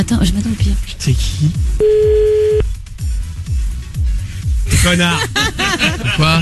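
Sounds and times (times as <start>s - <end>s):
speech: 0.0s - 3.6s, 4.8s - 6.3s
phone call tone while a call is being placed: 1.8s - 2.6s
laughter: 4.8s - 6.3s.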